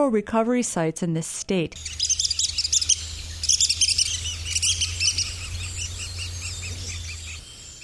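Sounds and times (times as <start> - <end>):
speech: 0.0 - 2.1
red-cockaded woodpecker calls in the Ouachita National Forest: 1.8 - 7.8
steady low hum: 1.8 - 7.8.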